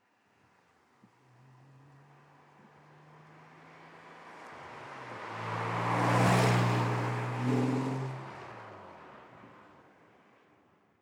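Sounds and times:
sports car passing by at medium speed: 3.2 - 8.8.

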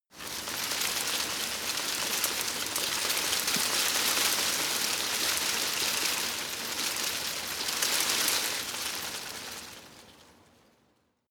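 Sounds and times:
scrub small branches rustling: 0.1 - 10.6.

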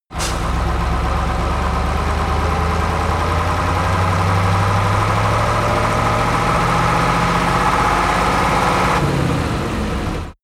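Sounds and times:
Ural 4320 truck accelerating: 0.1 - 10.4.

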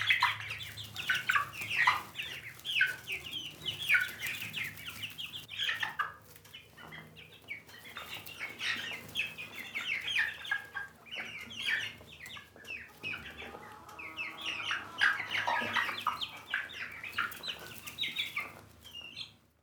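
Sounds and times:
chickens clucking: 0.0 - 19.6.

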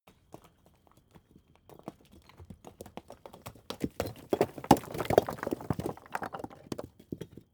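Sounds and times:
large stone falling: 4.0 - 7.3.

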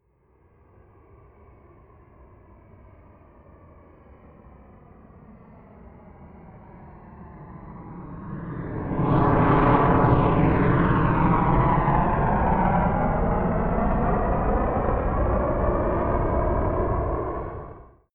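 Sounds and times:
B-1B Lancer military jet flyby: 6.7 - 17.9.

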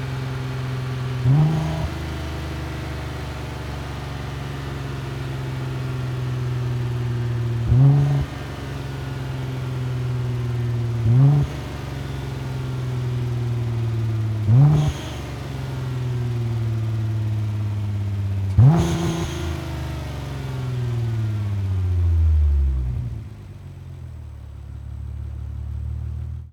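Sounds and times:
Nissan GT-R 35 car engine decelerating: 0.2 - 26.5.

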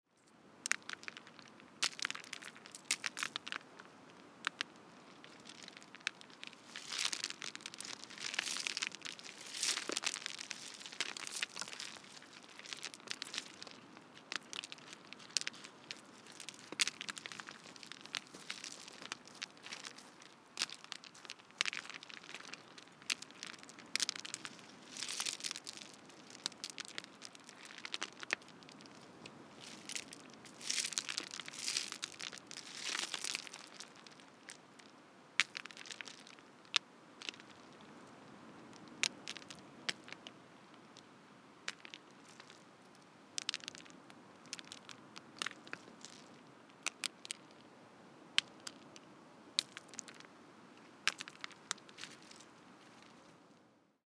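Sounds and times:
crackling stones: 0.2 - 47.7, 48.4 - 53.4.

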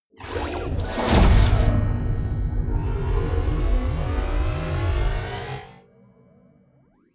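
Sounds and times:
magic warp personal jump departure swooshes and swishes: 0.2 - 5.8.

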